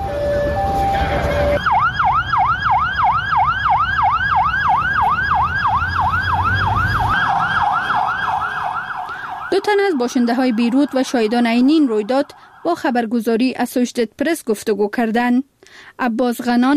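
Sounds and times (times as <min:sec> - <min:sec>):
people and police commotion after an attack: 0:00.0 - 0:13.0
wailing emergency siren after an attack: 0:00.0 - 0:13.2
speech: 0:09.7 - 0:16.7.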